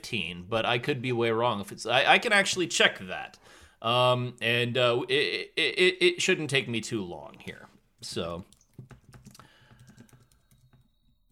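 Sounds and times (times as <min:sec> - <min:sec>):
speech: 0:00.0 - 0:08.9
rapid typing on a computer keyboard with plastic key clicks: 0:08.4 - 0:11.2.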